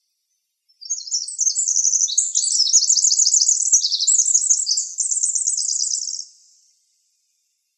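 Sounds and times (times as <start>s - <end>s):
winter wren singing in Arizona: 0.7s - 6.6s.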